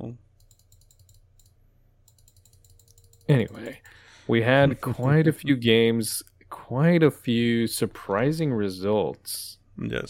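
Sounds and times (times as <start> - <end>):
keyboard typing: 0.4 - 4.0
mouse clicking: 0.4 - 4.0
speech: 3.3 - 10.0.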